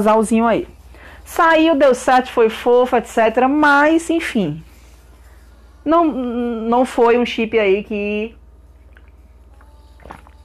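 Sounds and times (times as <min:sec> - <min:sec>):
speech: 0:00.0 - 0:04.7, 0:05.8 - 0:08.4
steady low hum: 0:00.0 - 0:10.4
person sipping water: 0:08.8 - 0:10.4.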